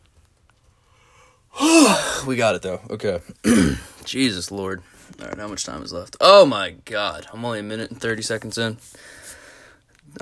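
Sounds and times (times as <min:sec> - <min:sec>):
long breathy yawn: 0:01.5 - 0:02.2
speech: 0:02.2 - 0:09.3.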